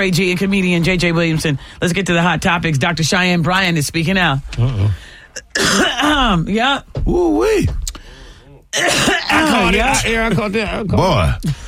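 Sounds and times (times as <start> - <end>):
speech: 0.0 - 7.8, 8.7 - 11.6
person coughing and choking: 4.7 - 6.3, 8.7 - 10.4.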